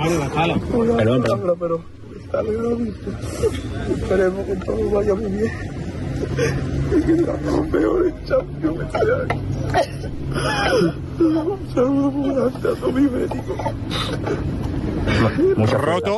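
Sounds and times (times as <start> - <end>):
speech: 0.0 - 16.1
young man sobbing and wailing: 5.4 - 16.1.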